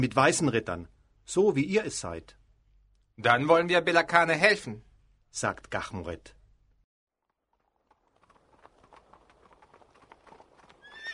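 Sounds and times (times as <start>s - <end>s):
speech: 0.0s - 2.4s, 3.2s - 6.4s
horses' hooves clip-clopping on town streets: 7.4s - 11.1s
horse whinny: 10.8s - 11.1s.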